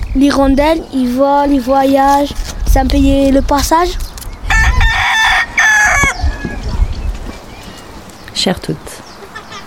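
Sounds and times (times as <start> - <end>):
speech: 0.2 - 4.1, 8.4 - 9.0
faint farmyard noise: 0.2 - 9.6
rooster crowing: 4.5 - 6.6.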